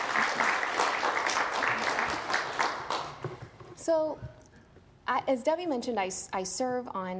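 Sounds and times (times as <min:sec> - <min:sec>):
crowd of teachers applauding: 0:00.0 - 0:03.2
speech: 0:03.9 - 0:04.3, 0:05.1 - 0:07.1.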